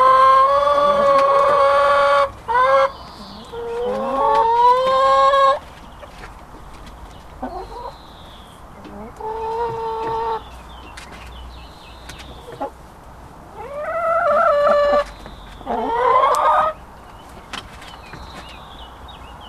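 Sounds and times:
hens cackling: 0:00.0 - 0:06.3, 0:07.4 - 0:08.0, 0:08.8 - 0:10.4, 0:12.3 - 0:12.8, 0:13.5 - 0:16.8.

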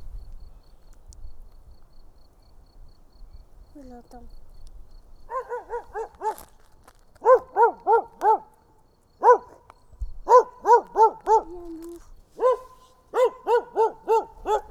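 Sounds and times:
speech: 0:03.8 - 0:04.4
dog giving short high yelping barks: 0:05.3 - 0:06.5, 0:07.2 - 0:08.6, 0:09.2 - 0:09.7, 0:10.3 - 0:11.7, 0:12.4 - 0:14.6.

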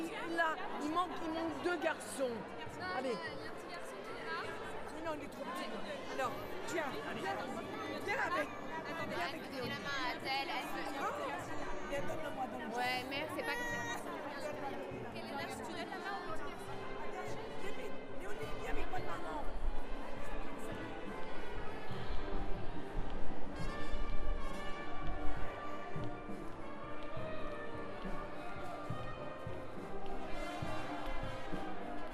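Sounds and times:
crowd chattering outdoors outside a church after a service: 0:00.0 - 0:32.1
speech: 0:00.4 - 0:03.8, 0:05.1 - 0:16.8.

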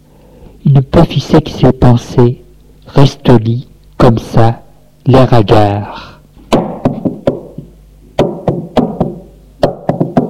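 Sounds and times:
speech: 0:00.7 - 0:06.1
knocking on a door with a resonant wooden thud: 0:06.5 - 0:10.2.

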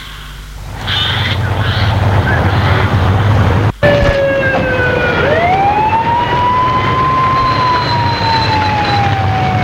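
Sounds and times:
steady engine rumble: 0:00.0 - 0:09.6
police car siren: 0:03.8 - 0:09.6.

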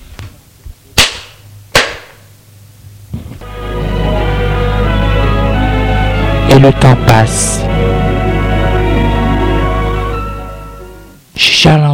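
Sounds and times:
slaps across the face: 0:01.0 - 0:02.2
music: 0:03.4 - 0:11.2
speech: 0:06.6 - 0:07.9, 0:11.6 - 0:11.9.

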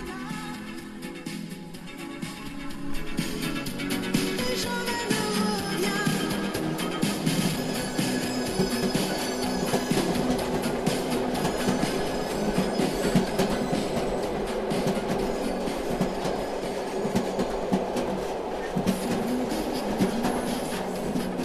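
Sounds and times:
moving train rumble and rattle in a sleeper compartment: 0:00.0 - 0:21.4
continuous clattering of a moving train: 0:07.0 - 0:21.4.

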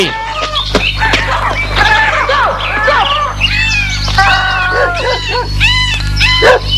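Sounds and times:
steady low hum: 0:00.0 - 0:06.7
dog barking: 0:04.6 - 0:05.6, 0:06.3 - 0:06.7.

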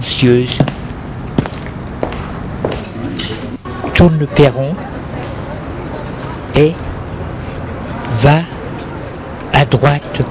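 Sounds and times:
speech: 0:00.0 - 0:00.6, 0:04.0 - 0:04.9, 0:06.6 - 0:06.9, 0:08.1 - 0:08.5, 0:09.7 - 0:10.2
quiet footsteps climbing the front steps of a house: 0:00.5 - 0:03.4.

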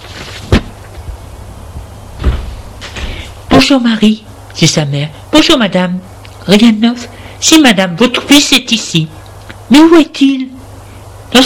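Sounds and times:
house door thud: 0:02.2 - 0:03.3
speech: 0:03.6 - 0:10.5.

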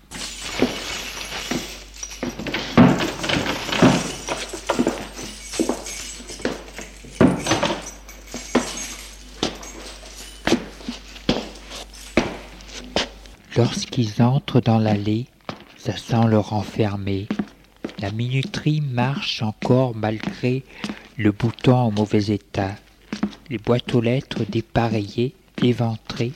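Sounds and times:
lock being worked with metallic rattles: 0:00.0 - 0:13.3
bunch of keys jingling: 0:00.0 - 0:13.4
old door of old building opening: 0:02.2 - 0:10.8
speech: 0:14.0 - 0:17.4, 0:18.0 - 0:22.8, 0:23.5 - 0:26.3.

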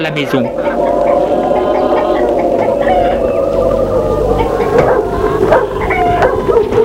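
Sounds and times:
speech: 0:00.0 - 0:01.5
steady whining howling tone: 0:00.0 - 0:06.8
dog barking and yelping: 0:04.8 - 0:06.8.

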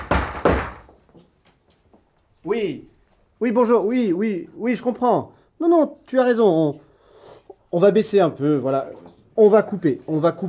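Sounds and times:
door being opened with loud thuds: 0:00.0 - 0:00.9
speech: 0:02.4 - 0:06.8, 0:07.7 - 0:10.4.

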